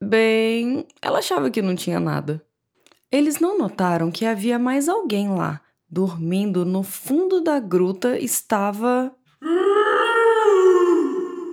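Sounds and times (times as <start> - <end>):
speech: 0.1 - 2.5, 3.1 - 9.8
voice imitating a grumpy bear growling: 9.4 - 11.5.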